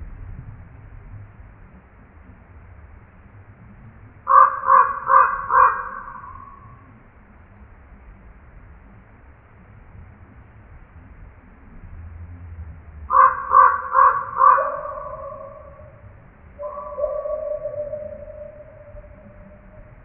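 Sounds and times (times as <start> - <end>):
low background rumble: 0.0 - 20.0
Common Raven croaking calls: 4.2 - 6.9, 13.0 - 20.0.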